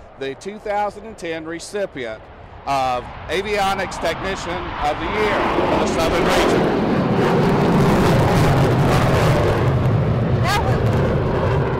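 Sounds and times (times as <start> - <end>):
military demonstration jets flying overhead: 0.0 - 11.7
speech: 0.2 - 7.6.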